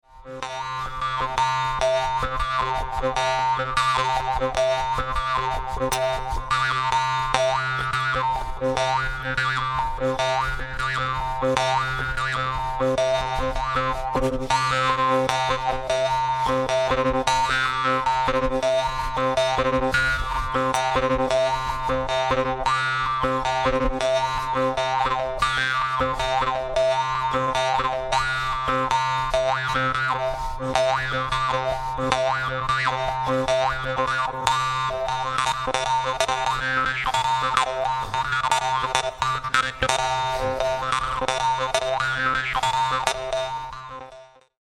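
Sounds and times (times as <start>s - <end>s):
jaw harp: 0.3s - 44.6s.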